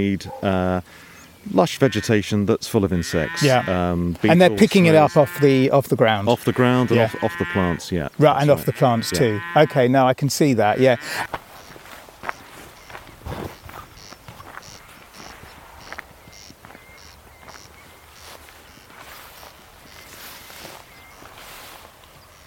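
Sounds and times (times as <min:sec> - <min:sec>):
speech: 0:00.0 - 0:11.4
two male corncrakes calling in duet: 0:00.4 - 0:02.2, 0:02.8 - 0:22.4
footsteps: 0:10.8 - 0:22.4
rustling: 0:11.0 - 0:22.4.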